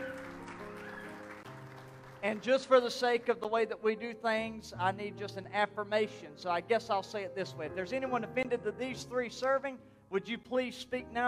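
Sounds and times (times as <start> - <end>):
crowd applauding in welcome: 0.0 - 3.3
speech: 2.2 - 11.2.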